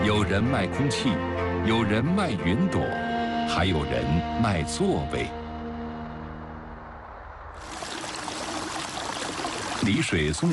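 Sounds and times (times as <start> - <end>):
speech: 0.1 - 5.4, 9.8 - 10.5
flowing stream in Songzhuang village, Songyang County, China: 7.6 - 10.5.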